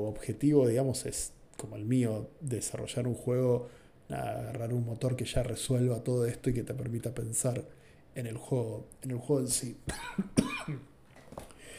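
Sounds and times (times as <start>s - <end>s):
speech: 0.0s - 10.9s
small cough: 9.9s - 10.9s
throat-clearing rasp: 9.9s - 10.9s.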